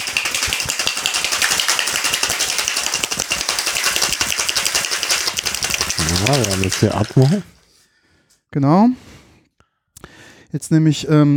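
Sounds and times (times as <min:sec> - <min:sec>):
ice cubes rattling in a cocktail shaker shaking an espresso martini: 0:00.0 - 0:07.7
speech: 0:06.2 - 0:07.5, 0:08.5 - 0:09.1, 0:10.5 - 0:11.3.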